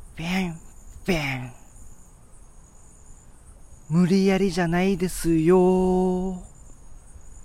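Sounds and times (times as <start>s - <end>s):
insects chirping at night: 0.0s - 7.4s
speech: 0.2s - 1.6s, 3.9s - 6.5s.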